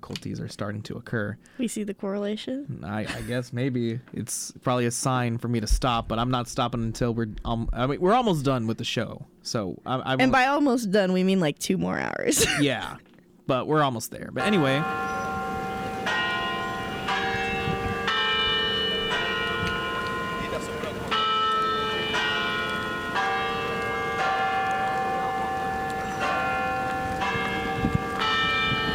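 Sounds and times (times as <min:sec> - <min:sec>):
speech: 0:00.1 - 0:15.2
church bells ringing in a steady peal: 0:14.4 - 0:28.9.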